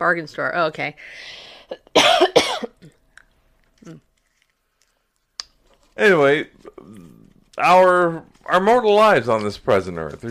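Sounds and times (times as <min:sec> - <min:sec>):
speech: 0:00.0 - 0:02.6, 0:03.8 - 0:04.1, 0:06.0 - 0:10.2
breaths: 0:01.0 - 0:01.8, 0:04.5 - 0:05.3
harsh coughs: 0:01.9 - 0:03.0
faint throat sounds: 0:03.8 - 0:04.1, 0:06.6 - 0:07.6.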